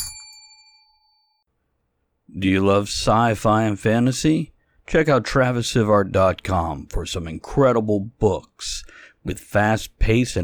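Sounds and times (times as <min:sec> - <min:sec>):
single bell struck: 0:00.0 - 0:01.4
speech: 0:02.4 - 0:10.4.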